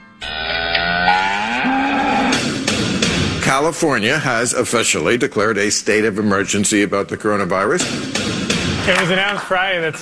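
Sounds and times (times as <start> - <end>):
cow mooing: 0.2 - 2.5
speech: 3.6 - 9.9.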